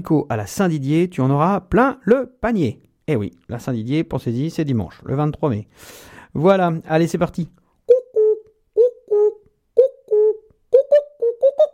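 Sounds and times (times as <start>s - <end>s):
speech: 0.0s - 7.6s
common cuckoo calling: 7.9s - 11.7s.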